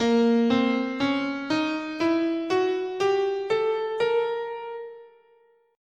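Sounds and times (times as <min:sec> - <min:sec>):
B flat diminished whole-half scale played: 0:00.0 - 0:05.3.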